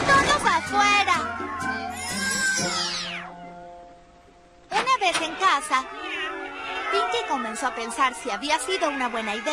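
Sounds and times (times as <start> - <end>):
kittens meowing: 0.1 - 3.5, 5.7 - 9.5
speech: 5.5 - 6.1, 6.9 - 9.5.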